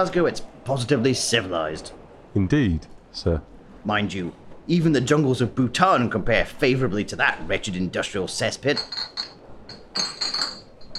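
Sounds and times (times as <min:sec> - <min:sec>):
speech: 0:00.0 - 0:09.3
glass bottles clinking in bags carried by an old man: 0:08.8 - 0:10.9.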